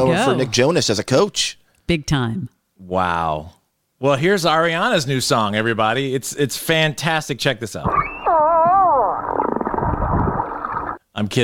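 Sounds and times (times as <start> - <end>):
speech: 0.0 - 8.2, 11.2 - 11.4
humpback whale tonal moan from a pod near snorkelers in Bermuda: 7.9 - 11.0.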